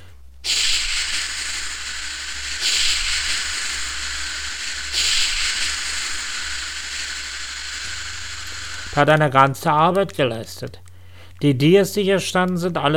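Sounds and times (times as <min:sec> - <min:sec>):
fire extinguisher spraying in a rushing hiss: 0:00.4 - 0:09.6
speech: 0:09.0 - 0:10.8, 0:11.4 - 0:12.9.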